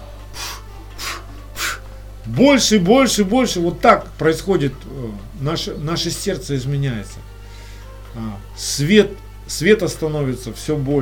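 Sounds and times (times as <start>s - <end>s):
low steady hum: 0.0s - 11.0s
forceful breaths blown into a deflated balloon: 0.3s - 2.0s
speech: 2.3s - 7.3s, 8.2s - 11.0s.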